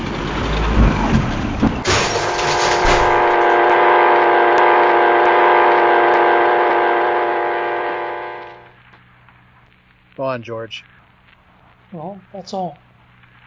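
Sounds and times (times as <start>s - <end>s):
heavy truck and trailer roaring and grinding gears: 0.0s - 6.8s
long steady blaring drone: 0.0s - 8.8s
truck crashing down onto a car: 0.5s - 3.9s
speech: 10.4s - 11.0s, 11.9s - 12.8s.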